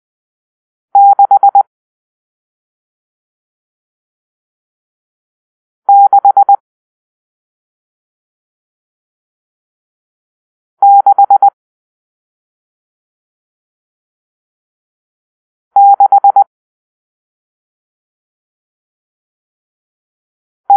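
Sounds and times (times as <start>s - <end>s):
morse code beeps for numeral six: 1.0s - 1.6s, 5.9s - 6.6s, 10.8s - 11.6s, 15.8s - 16.5s.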